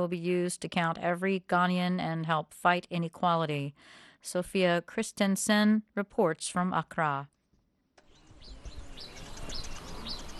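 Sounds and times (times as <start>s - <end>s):
speech: 0.0s - 7.3s
birds chirping near forest: 8.0s - 10.3s.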